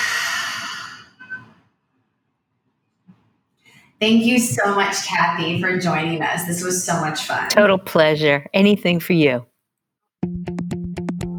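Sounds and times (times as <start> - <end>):
deep breath in and out during a guided breathing pause: 0.0 - 1.3
speech: 4.0 - 9.5.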